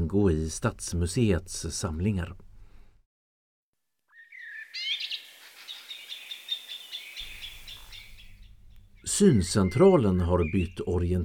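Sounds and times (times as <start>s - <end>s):
speech: 0.1s - 2.4s, 9.0s - 11.2s
blackbird singing: 4.1s - 11.2s.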